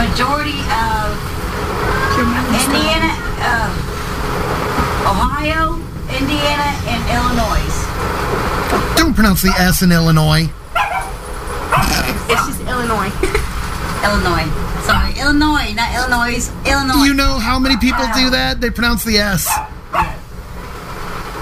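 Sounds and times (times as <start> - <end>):
low rumble: 0.0 - 21.4
dogs barking and yipping: 8.7 - 10.0, 10.7 - 12.7, 14.8 - 15.2, 17.6 - 18.5, 19.4 - 20.3
speech: 9.2 - 10.6, 12.3 - 13.4, 14.0 - 19.7.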